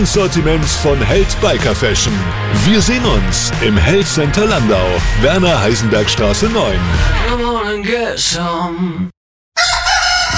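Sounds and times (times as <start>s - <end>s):
speech: 0.0s - 9.7s
rooster crowing: 9.6s - 10.3s.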